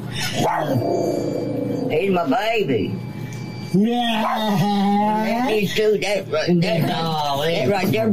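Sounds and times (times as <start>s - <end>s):
dogs barking loudly: 0.2s - 1.4s, 4.2s - 4.7s
speech: 0.2s - 3.1s, 3.7s - 8.1s.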